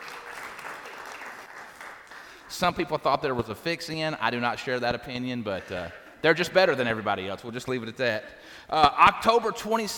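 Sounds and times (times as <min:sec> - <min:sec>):
crowd applauding: 0:00.0 - 0:02.8
speech: 0:02.5 - 0:09.9.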